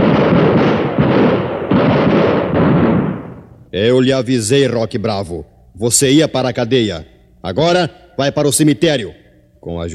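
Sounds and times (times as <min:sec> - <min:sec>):
gunshots in a dramatized Western-style shootout: 0:00.0 - 0:03.5
speech: 0:03.8 - 0:09.9.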